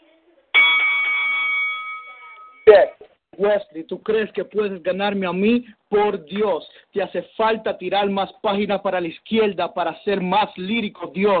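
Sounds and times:
single loud bell strike ringing to start a battle: 0.6s - 3.0s
speech: 2.7s - 11.3s.

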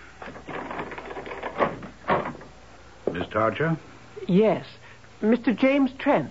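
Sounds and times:
door clunking as it swings open: 0.2s - 2.6s
speech: 3.2s - 6.2s.

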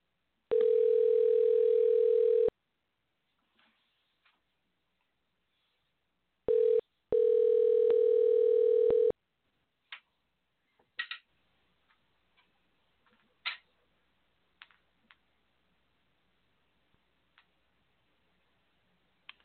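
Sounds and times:
telephone dial tone while calling a guest: 0.5s - 2.5s, 6.5s - 9.1s.

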